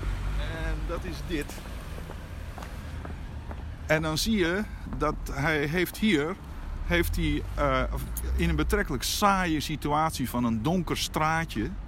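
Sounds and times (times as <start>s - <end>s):
speech: 0.9s - 1.8s, 3.9s - 11.8s
footsteps walking outdoors: 1.4s - 3.8s.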